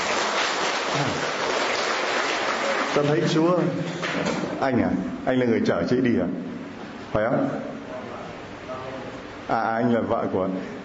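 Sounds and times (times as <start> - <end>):
audience applause: 0.0 - 4.2
speech: 3.0 - 6.5, 7.1 - 7.7, 9.5 - 10.8.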